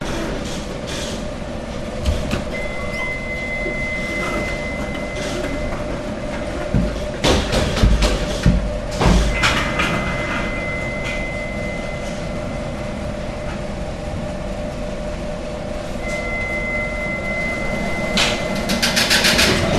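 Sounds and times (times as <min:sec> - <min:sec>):
bakers working in a German bakery: 0:00.0 - 0:19.7
loud beeping in a German bakery: 0:02.5 - 0:06.2, 0:09.3 - 0:13.6, 0:16.0 - 0:19.7.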